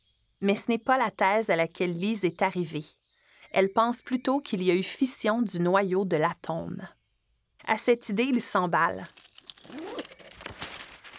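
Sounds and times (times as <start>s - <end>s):
speech: 0.4s - 7.0s, 7.6s - 9.8s
paper sheets being handled and crinkling: 9.0s - 11.1s.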